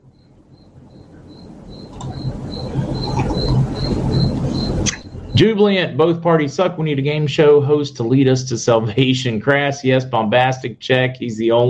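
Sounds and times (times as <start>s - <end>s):
coquí frogs chirping: 0.0s - 5.4s
low rumbling night-time background: 0.0s - 8.1s
laughter: 2.7s - 5.0s
speech: 5.4s - 11.6s.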